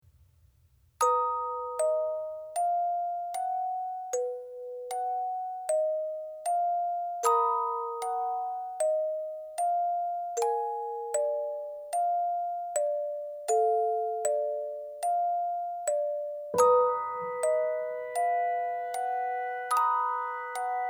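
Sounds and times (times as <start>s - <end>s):
music box piano melody: 1.0s - 20.8s.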